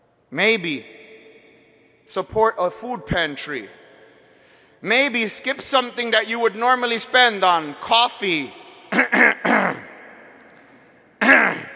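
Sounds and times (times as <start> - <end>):
speech: 0.3 - 1.0, 2.1 - 3.8, 4.8 - 9.3
person clearing throat with something stuck in it: 8.9 - 9.9, 11.2 - 11.7.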